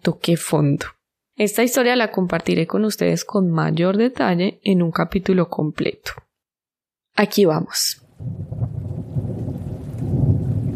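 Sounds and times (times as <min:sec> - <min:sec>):
speech: 0:00.0 - 0:06.2, 0:07.2 - 0:08.8
deep continuous rumbling thunder: 0:08.1 - 0:10.7
steady rain: 0:08.2 - 0:10.7.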